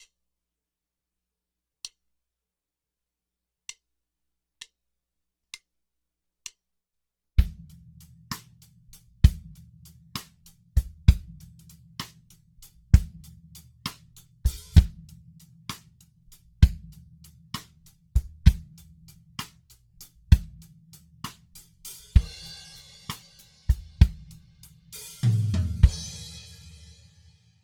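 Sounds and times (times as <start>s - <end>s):
drums: 7.4s - 27.6s.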